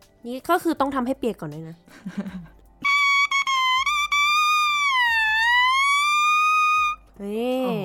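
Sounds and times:
speech: 0:00.2 - 0:02.5, 0:07.2 - 0:07.8
bare oboe reed blown alone, buzzy high-pitched squeal: 0:02.8 - 0:07.0.

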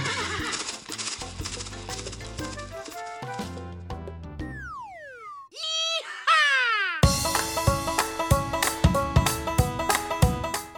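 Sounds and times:
horse whinnying: 0:00.0 - 0:00.7
horse hoofbeats galloping: 0:00.0 - 0:03.8
bright bouncy music with a galloping beat: 0:00.0 - 0:05.1, 0:07.0 - 0:10.7.

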